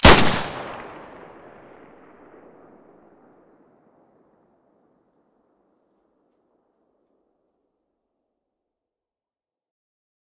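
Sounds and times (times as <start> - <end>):
M9A3 pistol muzzle gunshot: 0.0 - 1.2.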